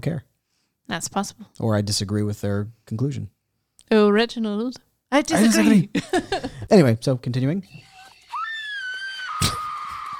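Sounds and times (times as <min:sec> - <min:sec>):
speech: 0:00.0 - 0:00.3, 0:00.9 - 0:07.9
long shrill scream: 0:07.8 - 0:10.1.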